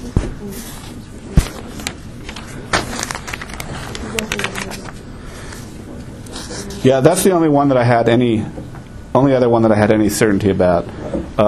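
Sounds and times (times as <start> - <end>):
paper sheets being shuffled and handled: 0.5 - 5.7
speech: 6.8 - 8.6, 9.2 - 11.4.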